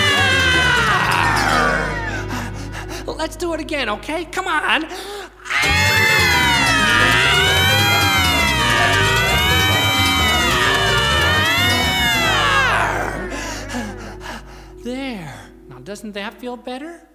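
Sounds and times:
group of children screaming together: 0.0 - 2.5, 5.4 - 13.9
speech: 3.2 - 5.8, 15.9 - 17.1.

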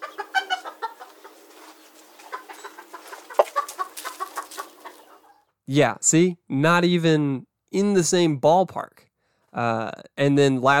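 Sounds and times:
chicken clucking: 0.0 - 5.5
speech: 5.7 - 10.7.

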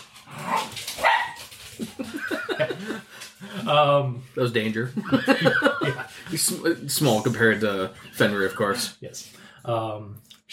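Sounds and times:
several dogs barking and yipping while playing: 0.0 - 2.3
laughter: 1.8 - 3.7, 4.9 - 8.9
speech: 1.8 - 10.5.

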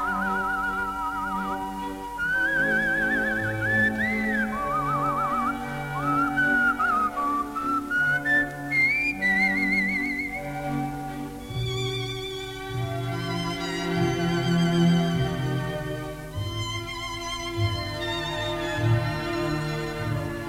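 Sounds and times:
man whistling an operetta melody: 0.0 - 10.6
lush orchestral accompaniment with strings: 0.0 - 20.4.

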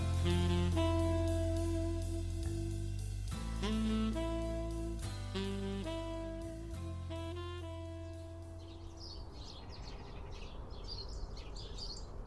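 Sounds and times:
steady musical tones: 0.0 - 9.0
flock of house sparrows chattering in a garden in winter: 8.0 - 12.2.

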